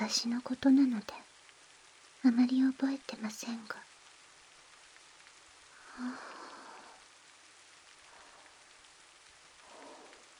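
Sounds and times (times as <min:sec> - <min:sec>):
speech: 0:00.0 - 0:01.3, 0:02.2 - 0:03.9, 0:06.0 - 0:06.4
steady rain: 0:00.0 - 0:10.3.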